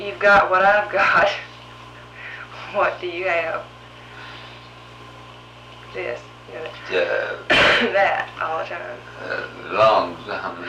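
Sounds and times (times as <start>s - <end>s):
speech: 0.0s - 1.5s, 2.7s - 3.7s, 5.9s - 10.6s
man clearing his throat: 7.1s - 7.9s
brief rough cough-like rasp: 7.2s - 8.0s.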